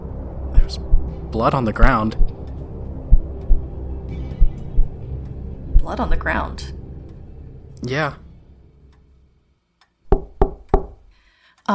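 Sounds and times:
soft low rumble: 0.0s - 9.6s
speech: 0.7s - 2.3s, 5.8s - 6.8s, 7.8s - 8.2s
quick crisp light knocks on a door: 10.1s - 11.0s.

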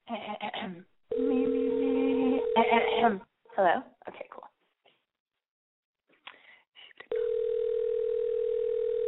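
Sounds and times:
ringback tone of a telephone ringing on an outgoing call: 1.1s - 2.7s, 7.1s - 9.0s
speech: 2.7s - 3.9s.

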